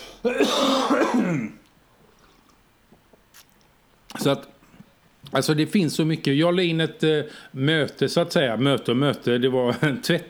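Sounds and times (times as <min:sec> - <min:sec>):
cough: 0:00.0 - 0:01.7
throat clearing: 0:00.0 - 0:01.7
speech: 0:00.2 - 0:01.6, 0:04.2 - 0:04.5, 0:05.3 - 0:10.2.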